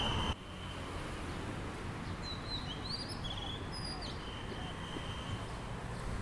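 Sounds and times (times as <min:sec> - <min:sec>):
dense steady rumble of car traffic in Bangkok: 0:00.0 - 0:06.2
birds chirping and whistling in thin high notes: 0:02.1 - 0:05.5.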